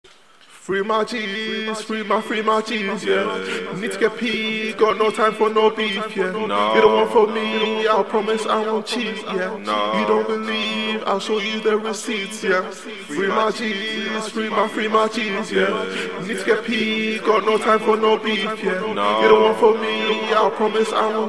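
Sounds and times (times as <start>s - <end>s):
trap a cappella vocals in E minor: 0.6s - 21.2s.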